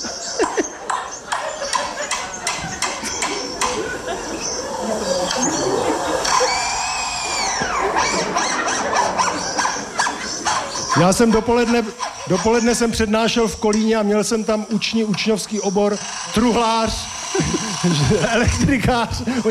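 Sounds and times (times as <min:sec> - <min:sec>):
laughter: 0:00.0 - 0:19.4
lyrebird imitating automatic screwdriver whirring whine: 0:00.0 - 0:19.4
lyrebird imitating automatic screwdriver clicks: 0:00.3 - 0:03.8, 0:06.2 - 0:07.6, 0:15.1 - 0:18.7
speech: 0:11.0 - 0:19.4.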